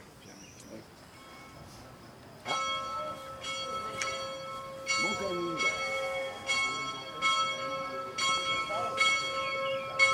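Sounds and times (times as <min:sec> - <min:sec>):
church bells ringing: 0:02.4 - 0:10.1.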